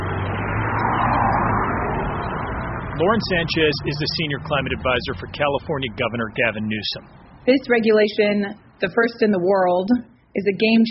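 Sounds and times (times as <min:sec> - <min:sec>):
car traffic on a Los Angeles city street: 0:00.0 - 0:10.8
speech: 0:03.0 - 0:10.8.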